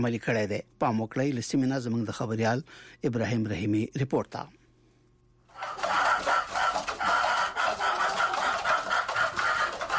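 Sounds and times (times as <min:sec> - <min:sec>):
speech: 0:00.0 - 0:04.6
flock of chickens clucking and crowing in an old mud-brick house: 0:05.5 - 0:09.9.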